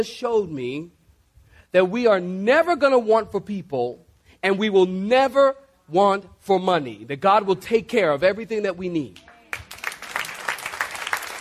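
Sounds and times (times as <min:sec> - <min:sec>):
speech: 0:00.0 - 0:01.0, 0:01.7 - 0:09.2
group of people clapping: 0:09.2 - 0:11.4.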